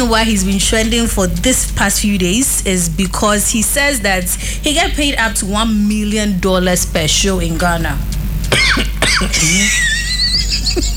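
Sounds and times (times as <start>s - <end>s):
speech: 0.0s - 10.9s
steady noise: 0.0s - 10.9s
person coughing harshly: 8.5s - 9.9s
laughter: 9.2s - 10.9s.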